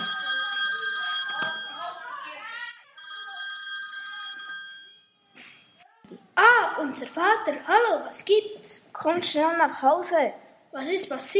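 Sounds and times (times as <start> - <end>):
mobile phone ringing with an electronic tone: 0.0 - 2.1, 3.0 - 5.8
speech: 6.8 - 11.3.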